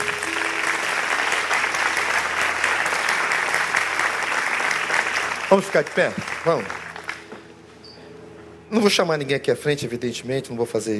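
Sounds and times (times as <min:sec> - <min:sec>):
large audience applauding: 0:00.0 - 0:07.4
speech: 0:05.5 - 0:06.8, 0:08.7 - 0:10.9.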